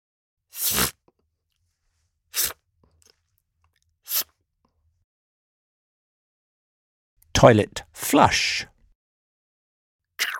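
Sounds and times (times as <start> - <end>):
toilet paper tearing off the roll: 0.5 - 1.0, 4.1 - 4.3
speech: 7.4 - 8.7.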